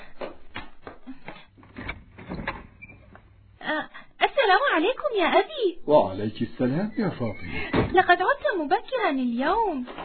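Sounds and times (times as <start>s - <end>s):
door opening with scraping rattle: 1.7s - 3.2s
speech: 4.8s - 10.0s.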